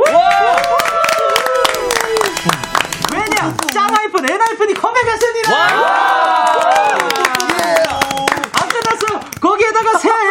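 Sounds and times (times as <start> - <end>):
crowd cheering and shouting: 0.0 - 4.0, 5.0 - 8.5
people clapping: 0.0 - 10.2
celebratory fanfare sound effect: 0.2 - 4.0.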